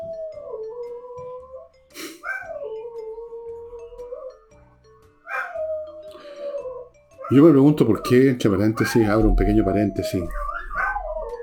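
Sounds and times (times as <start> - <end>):
dogs howling and whining: 0.0 - 4.6, 5.2 - 11.4
dogs barking: 2.2 - 3.1, 5.2 - 11.4
speech: 7.3 - 10.4.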